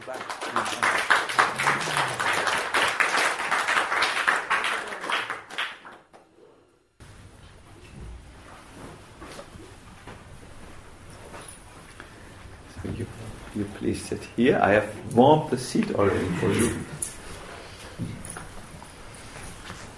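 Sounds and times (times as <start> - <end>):
crowd applauding loudly: 0.0 - 6.1
low murmuring in a room: 0.8 - 2.8, 15.6 - 17.5
speech: 14.0 - 16.9.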